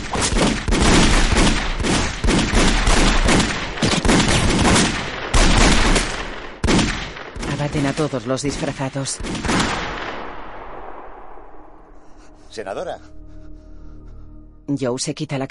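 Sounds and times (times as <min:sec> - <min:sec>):
heavy gunfire in a shootout in a thriller-horror action film: 0:00.0 - 0:11.6
speech: 0:07.8 - 0:09.7, 0:12.6 - 0:13.2, 0:14.7 - 0:15.4.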